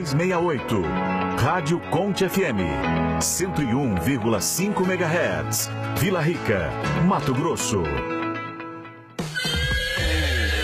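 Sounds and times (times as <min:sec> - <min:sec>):
speech: 0:00.0 - 0:08.2
horse neighing: 0:09.3 - 0:10.6.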